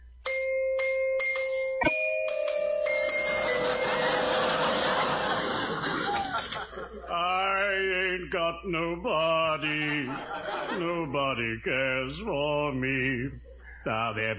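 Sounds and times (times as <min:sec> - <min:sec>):
doorbell chiming: 0:00.2 - 0:05.6
busy wash of voices and laughter: 0:03.7 - 0:07.4, 0:09.6 - 0:11.1
speech: 0:08.3 - 0:14.3.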